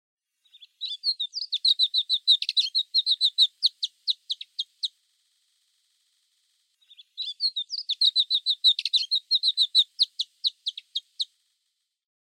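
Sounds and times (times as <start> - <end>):
alpine accentor song of rapid scratchy warbling trills on Mount Fuji: 0.6 - 4.7, 6.8 - 11.0.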